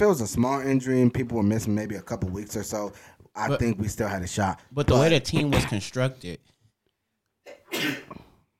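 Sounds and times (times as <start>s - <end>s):
speech: 0.0s - 6.5s
person sneezing: 7.4s - 8.4s.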